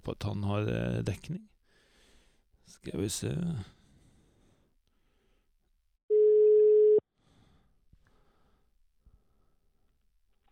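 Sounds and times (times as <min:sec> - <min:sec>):
speech: 0:00.0 - 0:01.6, 0:02.7 - 0:03.8
telephone ringback tone of a call to a cyclist during a bike race: 0:06.1 - 0:07.0.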